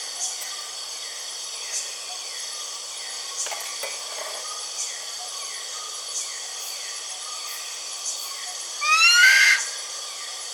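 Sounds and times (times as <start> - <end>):
buffy fish owl giving a drawn-out rising whistled wail: 8.8 - 9.8.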